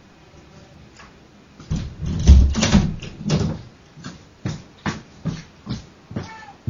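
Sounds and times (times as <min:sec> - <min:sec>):
door being handled, thumping and rattling: 0:01.7 - 0:03.7.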